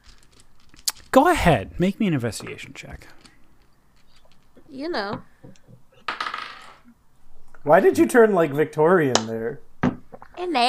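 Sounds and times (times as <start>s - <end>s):
dice clattering across a hard tabletop: 0.0s - 6.9s
speech: 1.2s - 3.2s, 4.7s - 5.8s, 7.6s - 9.7s, 10.4s - 10.6s.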